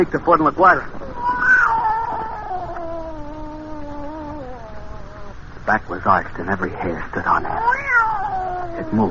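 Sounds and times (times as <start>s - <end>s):
speech: 0.0s - 1.0s, 5.7s - 8.0s, 8.8s - 9.0s
cat yowling: 1.0s - 5.6s, 7.3s - 9.0s.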